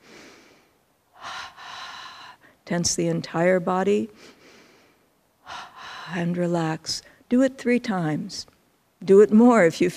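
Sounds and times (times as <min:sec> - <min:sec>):
double breath as a breathing exercise before meditation: 0:00.0 - 0:02.6, 0:04.2 - 0:06.4
speech: 0:02.7 - 0:04.4, 0:06.1 - 0:09.9.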